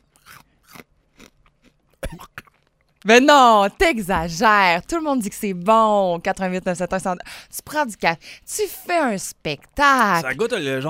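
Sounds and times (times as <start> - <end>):
person biting into and chewing crisp food: 0.0 - 3.0
speech: 3.0 - 10.8.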